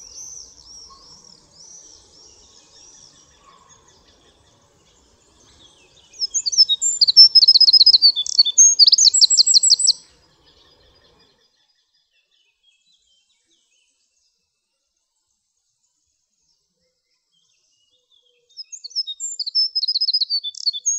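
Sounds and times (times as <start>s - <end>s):
Eurasian wren singing high hurried trilled notes: 0.0s - 11.3s, 18.6s - 20.9s.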